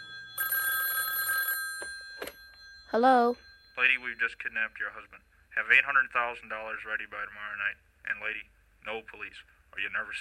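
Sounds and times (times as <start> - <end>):
telephone bell ringing: 0.0 - 4.8
speech: 2.9 - 10.1.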